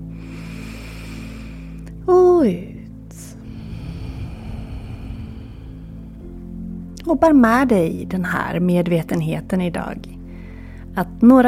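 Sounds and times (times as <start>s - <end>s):
deep breath in through the nose: 0.0s - 2.0s, 3.2s - 6.8s, 10.2s - 10.9s
speech: 2.1s - 2.7s, 7.1s - 10.2s, 11.0s - 11.4s.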